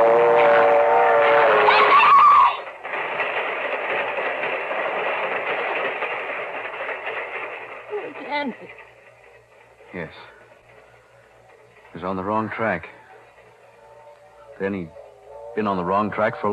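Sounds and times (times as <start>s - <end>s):
train horn: 0.0s - 2.6s, 13.8s - 16.5s
train rolling on the tracks: 0.0s - 16.5s
speech: 12.6s - 13.0s, 14.6s - 15.0s, 15.6s - 16.5s.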